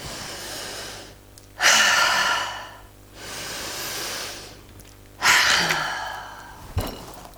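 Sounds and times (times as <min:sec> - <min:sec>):
deep breathing: 0:00.0 - 0:07.3.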